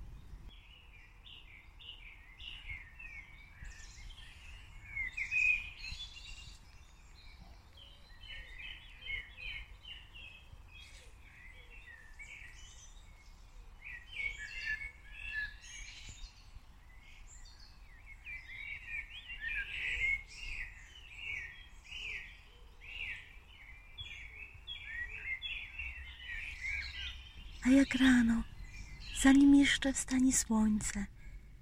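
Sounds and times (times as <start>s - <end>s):
low rumbling background: 0.0s - 0.6s, 27.1s - 31.6s
chorus of small birds chirping and trilling: 0.0s - 31.6s
speech: 27.6s - 28.5s, 29.2s - 31.2s.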